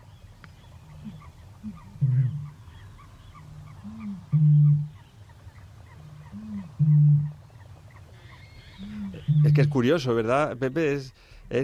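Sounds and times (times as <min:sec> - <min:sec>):
great bittern low grunting notes: 0:00.0 - 0:10.7
steady low background: 0:00.0 - 0:11.6
great bittern booming call recording: 0:00.8 - 0:10.1
speech: 0:09.6 - 0:11.6.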